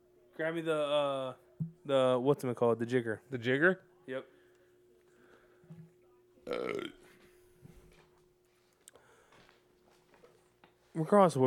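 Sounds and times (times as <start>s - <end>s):
speech: 0.4s - 4.4s, 6.5s - 7.0s, 11.0s - 11.4s
throaty burp: 6.4s - 7.3s.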